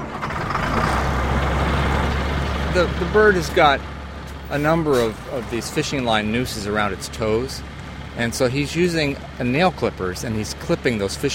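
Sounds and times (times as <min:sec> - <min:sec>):
bucket truck engine running during an osprey rescue: 0:00.0 - 0:11.3
speech: 0:02.8 - 0:03.9, 0:04.5 - 0:11.3.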